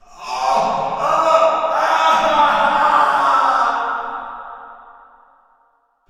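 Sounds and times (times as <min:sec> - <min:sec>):
person screaming in pain in prison: 0:00.0 - 0:04.2.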